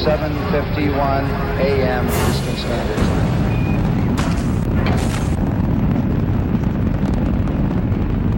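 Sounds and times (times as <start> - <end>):
speech: 0.0 - 3.4
deafening roar of a rocket lifting off: 2.2 - 8.3.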